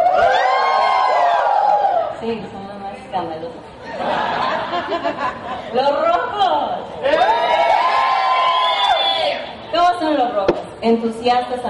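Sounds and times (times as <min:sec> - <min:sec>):
audience group shouting and cheering in a collective yell: 0:00.0 - 0:02.2, 0:07.0 - 0:09.6
speech: 0:02.2 - 0:04.2, 0:04.8 - 0:07.3, 0:10.0 - 0:11.6
laughter: 0:03.8 - 0:05.8.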